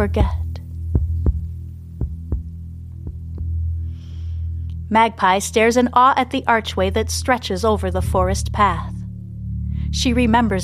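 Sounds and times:
speech: 0:00.0 - 0:00.4, 0:04.9 - 0:09.0, 0:09.9 - 0:10.6
thumps of synchronized heartbeats: 0:00.0 - 0:03.6
low droning hum: 0:00.0 - 0:10.6.

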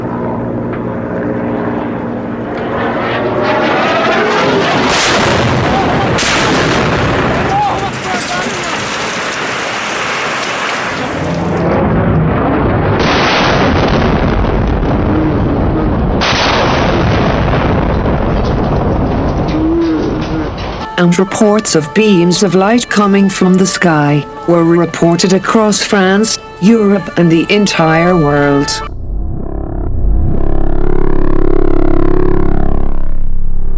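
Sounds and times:
explosions in Paris rumbling blasts and booms: 0:00.2 - 0:21.0, 0:28.8 - 0:33.7
speech: 0:21.1 - 0:28.9.

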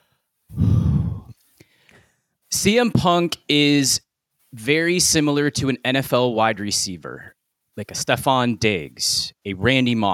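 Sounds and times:
deep breath: 0:00.0 - 0:02.4
speech: 0:02.6 - 0:10.1.

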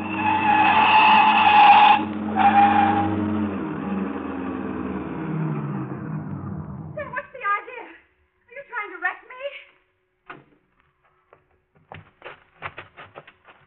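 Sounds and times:
car skidding with drawn-out tire screech: 0:00.0 - 0:07.0
car engine roaring: 0:00.0 - 0:07.2
short rattles clatters and thumps: 0:10.3 - 0:13.6.

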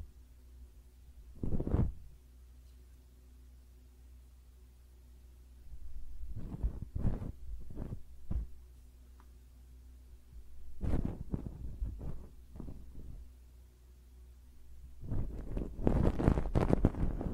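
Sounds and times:
steady low hum: 0:00.0 - 0:17.3
ear cleaning scratchy rubbing and crackling: 0:01.4 - 0:02.1, 0:06.2 - 0:08.6, 0:10.6 - 0:13.3, 0:15.0 - 0:17.3.

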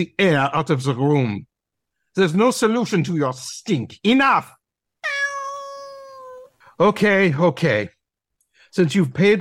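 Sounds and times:
speech: 0:00.0 - 0:01.5, 0:02.2 - 0:04.6, 0:06.8 - 0:08.0, 0:08.7 - 0:09.3
cat meowing: 0:05.0 - 0:06.5.

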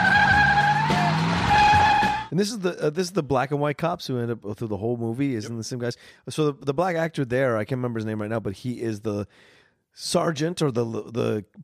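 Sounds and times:
car tires skidding during car chase: 0:00.0 - 0:02.3
speech: 0:02.4 - 0:11.6.

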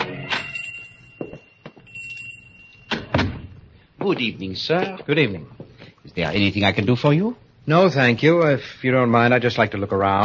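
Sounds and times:
steady high electronic bell tone: 0:00.0 - 0:03.6
shop door being pushed open with solid clunks and thuds: 0:02.9 - 0:03.6
speech: 0:04.0 - 0:05.6, 0:06.2 - 0:10.2.

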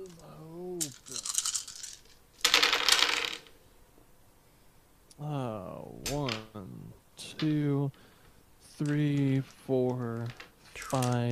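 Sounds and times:
handful of dice rolling across a hard table: 0:00.8 - 0:03.6, 0:08.8 - 0:11.2
speech: 0:07.4 - 0:08.0, 0:08.8 - 0:11.2.

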